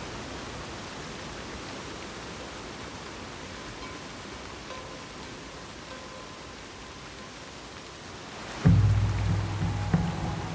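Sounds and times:
torrent pouring over large rock ledges into a pool: 0.0s - 10.5s
soft low thumps: 8.7s - 10.5s.

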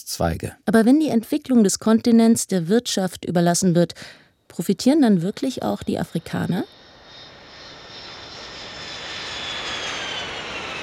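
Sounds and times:
speech: 0.0s - 6.8s
airplane engines droning in flight: 5.1s - 10.8s.

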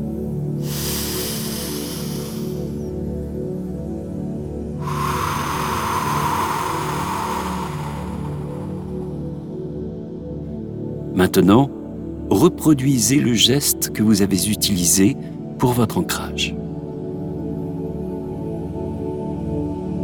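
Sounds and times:
soft music: 0.0s - 20.0s
deep breaths in through the nose and out through the mouth: 0.6s - 3.1s, 4.8s - 9.6s
speech: 11.2s - 16.6s.

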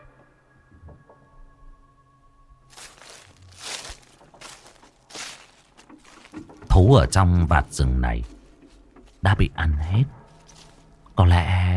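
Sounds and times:
barefoot footsteps crunching through a forest thick with thorns and brush: 2.7s - 9.3s, 10.2s - 11.2s
speech: 6.8s - 8.4s, 9.2s - 10.2s, 11.2s - 11.7s.

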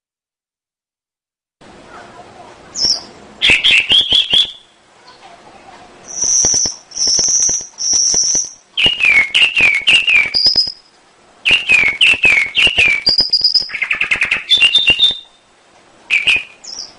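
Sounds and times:
canary lure song for training caged songbirds: 1.9s - 16.9s.

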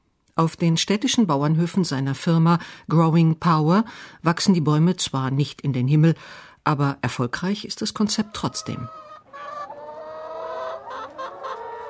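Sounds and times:
speech: 0.4s - 9.0s
large flock of chickens clucking inside a plastic film greenhouse: 7.9s - 11.8s.

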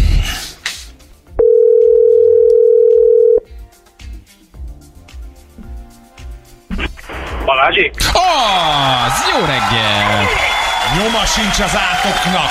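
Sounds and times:
phone line clicks: 1.4s - 3.4s
telephone call ringing out with long steady tone: 1.4s - 3.4s
speech: 7.7s - 12.4s.

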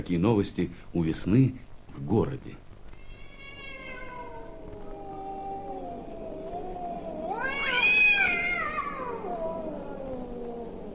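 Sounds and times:
speech: 0.0s - 2.6s
cat yowling on a nighttime rooftop in March: 3.0s - 10.9s.

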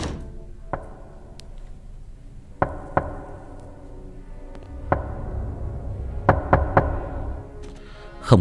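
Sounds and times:
steady noise: 0.0s - 8.4s
sharp dry raps knocking on a door: 2.6s - 3.3s, 6.2s - 7.2s.

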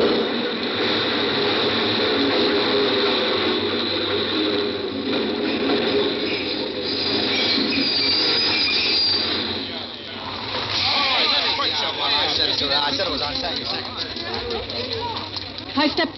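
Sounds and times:
subway train rolling in with a steady rumble: 0.0s - 16.1s
subway train wheels screeching against the rails: 2.3s - 14.2s.

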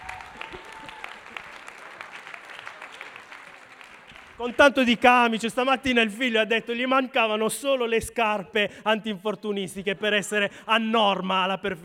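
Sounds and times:
audience applauding to welcome a guest: 0.0s - 5.5s
speech: 4.4s - 11.8s.

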